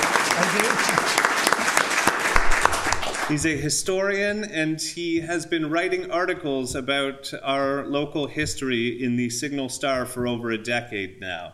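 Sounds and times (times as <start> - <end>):
audience applause at an evening event: 0.0 - 3.6
speech: 3.3 - 11.5.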